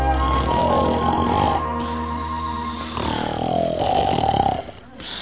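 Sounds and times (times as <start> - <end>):
man imitating loud snoring of a person in bed: 0.1 - 5.2.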